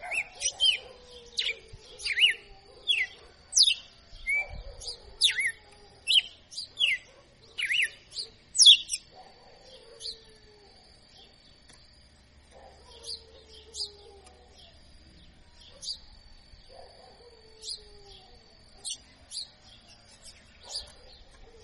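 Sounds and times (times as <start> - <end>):
female red-cowled cardinal singing whistled phrases in açoitando style: 1.4 - 9.1.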